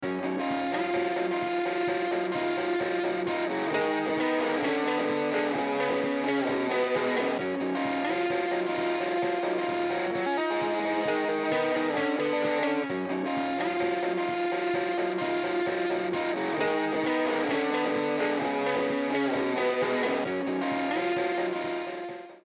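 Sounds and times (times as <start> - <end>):
guitars playing: 0.0 - 22.4.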